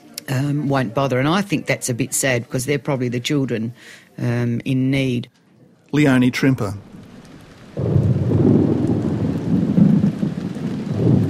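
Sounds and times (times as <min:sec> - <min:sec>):
speech: 0:00.3 - 0:06.9
steady rain pattering in Darwin during storm season: 0:01.0 - 0:11.2
rolling thunder in Darwin during storm season: 0:06.8 - 0:11.2.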